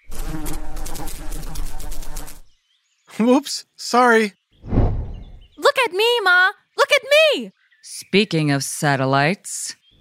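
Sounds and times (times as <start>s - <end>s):
insects buzzing around head: 0.0s - 2.6s
speech: 3.2s - 4.4s, 5.8s - 9.8s.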